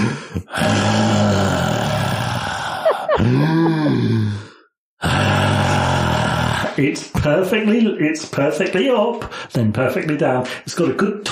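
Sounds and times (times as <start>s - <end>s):
person loudly imitating heavy snoring: 0.0s - 6.8s
speech: 6.8s - 11.2s.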